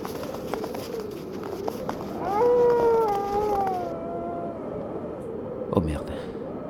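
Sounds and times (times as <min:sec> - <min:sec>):
steady rushing background: 0:00.0 - 0:03.9
wolves howling: 0:00.1 - 0:06.6.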